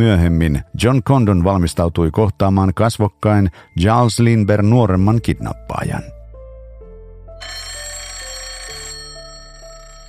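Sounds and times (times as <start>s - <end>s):
speech: 0.0s - 6.2s
telephone bell ringing: 7.4s - 10.0s.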